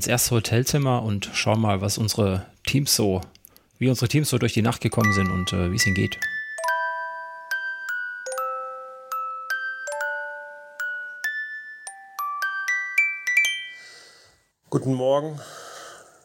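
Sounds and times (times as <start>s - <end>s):
speech: 0.0s - 6.4s, 14.7s - 15.6s
alarm clock ringing with a chiming bell-like melody: 5.0s - 14.1s.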